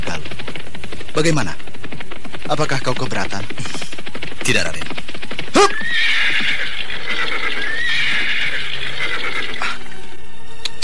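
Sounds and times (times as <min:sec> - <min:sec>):
horse hooves clip-clopping: 0:00.0 - 0:10.8
speech: 0:01.2 - 0:01.6, 0:02.5 - 0:05.0, 0:05.6 - 0:05.8
horse neighing as it is reined to a stop: 0:05.4 - 0:10.0.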